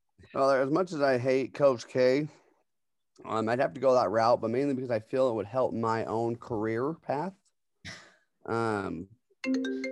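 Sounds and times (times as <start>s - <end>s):
speech: 0.3s - 2.4s, 3.2s - 9.9s
FaceTime call phone ringtone: 9.4s - 9.9s.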